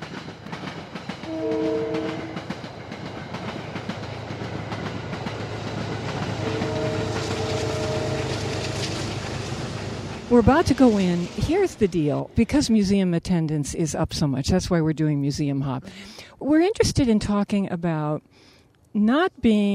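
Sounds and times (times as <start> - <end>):
train rumbling past, roar of wheels on rails: 0.0 - 12.7
train horn: 1.2 - 2.5, 6.3 - 9.2
speech: 10.3 - 19.7.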